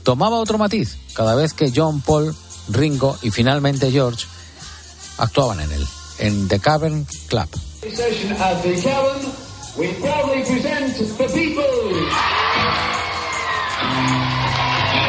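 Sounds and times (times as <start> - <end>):
speech: 0.0 - 4.4, 5.2 - 12.9
fans shouting and screaming in a packed club: 11.1 - 15.0.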